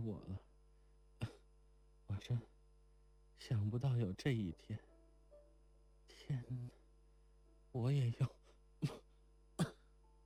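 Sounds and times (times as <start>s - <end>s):
speech: 0.0s - 0.5s, 2.2s - 2.5s, 3.4s - 4.9s, 6.1s - 6.8s, 7.7s - 9.0s
faint hum: 0.0s - 10.2s
short harsh coughs: 1.2s - 1.5s, 8.8s - 9.9s.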